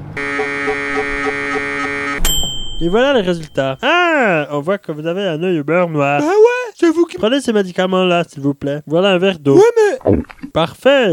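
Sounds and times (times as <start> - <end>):
CT scanner humming with buzzing drone and soft throbs: 0.0 - 4.5
speech: 2.8 - 11.1.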